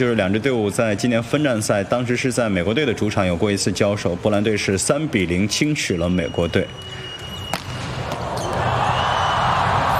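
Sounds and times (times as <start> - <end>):
speech: 0.0 - 7.0
steady crowd roar at a volleyball final: 7.3 - 9.9
volleyball serve striking the ball: 7.4 - 8.8.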